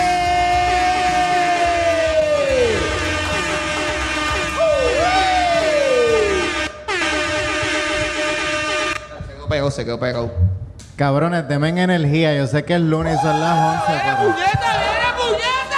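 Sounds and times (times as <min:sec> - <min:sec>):
audience cheering and applause for a performer being introduced on stage: 0:00.0 - 0:06.6, 0:13.0 - 0:15.7
air horns blaring with sustained tones sliding down in pitch: 0:00.0 - 0:09.2
speech: 0:09.7 - 0:14.9.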